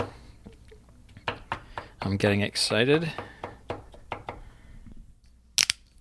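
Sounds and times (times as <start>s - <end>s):
knife chopping garlic on a board: 1.2s - 2.2s, 3.1s - 4.5s
speech: 2.1s - 3.3s.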